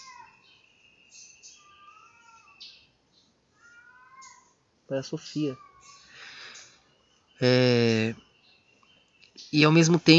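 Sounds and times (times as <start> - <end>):
cats yowling: 0.0 - 0.4, 1.6 - 2.6, 3.6 - 4.6, 5.3 - 6.1
speech: 4.9 - 5.7, 7.4 - 8.2, 9.5 - 10.1.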